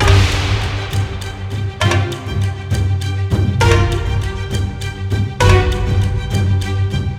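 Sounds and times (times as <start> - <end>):
music: 0.0 - 7.1.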